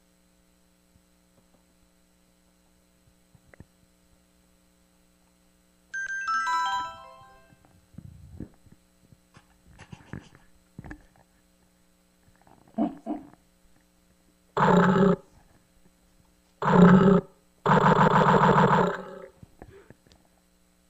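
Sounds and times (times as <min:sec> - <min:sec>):
monster roars coming from the walls: 0:14.6 - 0:15.2, 0:16.6 - 0:19.3.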